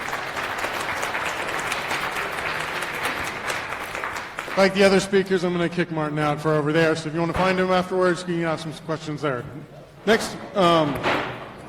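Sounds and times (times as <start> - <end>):
audience applause at the end of a conference talk: 0.0 - 5.1
speech: 4.6 - 11.3.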